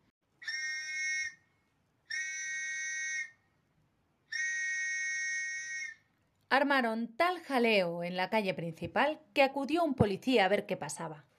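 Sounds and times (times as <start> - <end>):
shrill toy whistle blown by a child: 0.4 - 3.5, 4.2 - 6.1
speech: 6.5 - 11.3.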